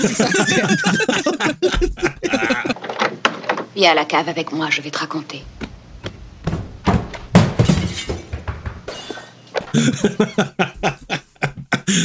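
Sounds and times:
speech: 0.0s - 2.0s, 3.8s - 5.6s, 9.9s - 10.9s
laughter: 0.0s - 2.8s, 9.7s - 12.0s
woman tumbling down a flight of stairs with loud thuds and clattering crashes: 6.0s - 8.9s.

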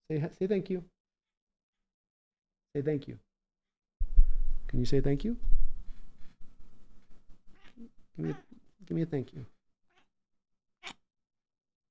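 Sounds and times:
speech: 0.1s - 1.0s, 2.8s - 3.3s, 4.7s - 5.6s, 7.8s - 9.6s
cat meowing: 7.5s - 8.6s, 9.9s - 10.1s.

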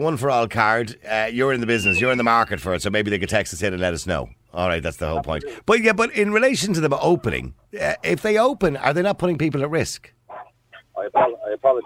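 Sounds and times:
speech: 0.0s - 10.2s, 11.0s - 11.8s
dog yipping softly: 1.7s - 2.6s.

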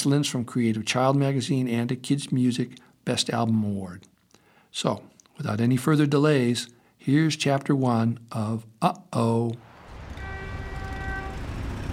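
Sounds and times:
speech: 0.0s - 4.1s, 4.7s - 9.7s
busy street traffic rumble: 9.7s - 11.9s
car horn blaring: 9.9s - 11.9s.

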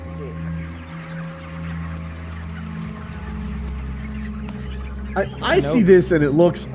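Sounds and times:
indistinct voices: 0.0s - 1.2s, 5.1s - 6.7s
chickens clucking and squawking at a chicken processing plant: 0.0s - 6.6s
speech: 5.2s - 6.7s.

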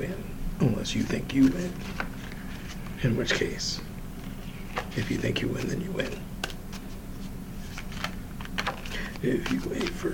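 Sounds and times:
speech: 0.0s - 2.2s, 3.0s - 3.9s, 5.0s - 6.3s, 9.2s - 10.1s
low steady hum: 0.0s - 10.1s
tarot cards being shuffled: 1.0s - 3.5s, 4.2s - 10.1s.

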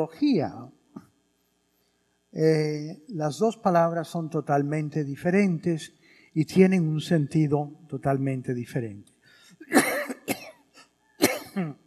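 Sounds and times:
speech: 0.0s - 0.8s, 2.3s - 9.1s
person coughing harshly: 9.6s - 11.8s.

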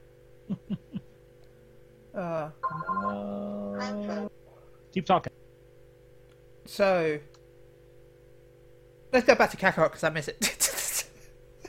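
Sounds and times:
low steady hum: 0.0s - 11.6s
speech: 2.2s - 4.2s, 5.0s - 5.3s, 6.7s - 7.4s, 9.1s - 10.6s
phone electronic ringtone: 2.6s - 3.5s.

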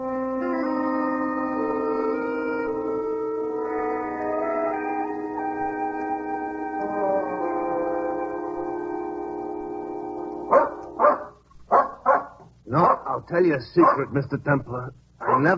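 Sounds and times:
droning musical tones: 0.0s - 11.2s
dog barking: 10.5s - 13.2s, 13.8s - 14.1s, 15.2s - 15.5s
speech: 13.2s - 15.5s.

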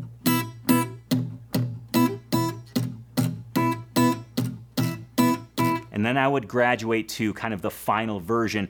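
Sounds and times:
acoustic guitar played with punchy fingerpicked pinch technique and syncopated rhythm: 0.0s - 6.0s
speech: 6.0s - 8.6s.

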